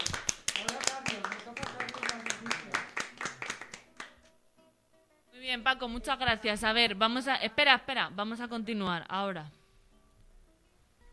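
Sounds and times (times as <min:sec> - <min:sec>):
applause from a small group: 0:00.0 - 0:04.2
speech: 0:05.5 - 0:09.6.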